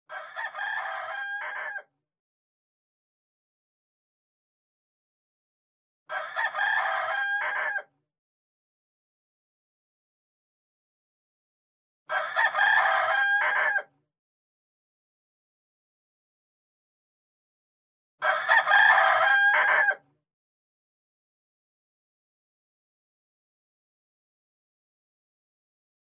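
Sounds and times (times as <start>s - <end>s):
rooster alarm ringtone: 0.1s - 1.9s, 6.1s - 7.9s, 12.1s - 13.9s, 18.2s - 20.0s.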